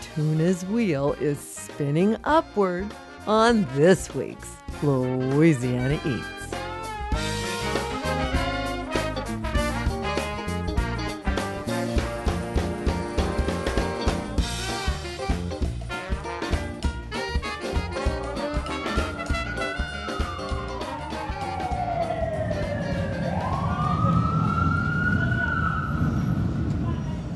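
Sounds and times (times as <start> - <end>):
rhythmic music: 0.0 - 21.9
speech: 0.2 - 6.4
siren wailing up and down: 19.3 - 26.6
steady low rumble of vehicles on a busy city street: 21.6 - 27.3.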